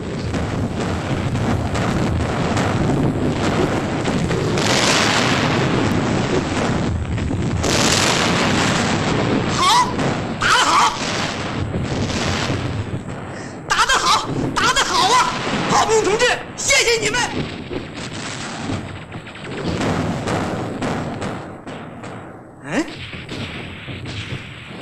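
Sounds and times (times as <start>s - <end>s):
artillery shelling a target with rumbling explosions and booms: 0.0s - 24.8s.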